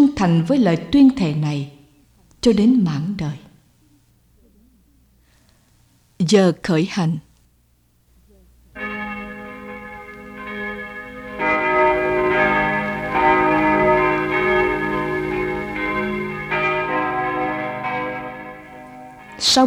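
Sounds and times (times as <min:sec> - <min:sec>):
seminary church bells pealing loudly: 0:00.0 - 0:01.9, 0:08.8 - 0:19.6
speech: 0:00.2 - 0:01.8, 0:02.4 - 0:03.4, 0:06.2 - 0:07.2, 0:19.5 - 0:19.6.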